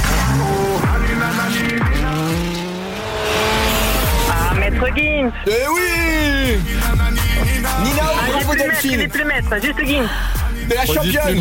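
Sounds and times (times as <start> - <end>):
car engine revving as the car starts: 0.0 - 5.4
music: 0.0 - 11.3
speech: 5.0 - 11.3.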